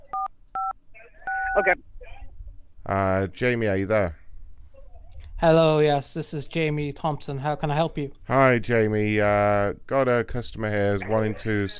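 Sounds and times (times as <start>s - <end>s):
telephone dialing tones while connecting a call: 0.1s - 1.8s
speech: 1.6s - 1.9s, 2.9s - 4.2s, 5.4s - 11.7s.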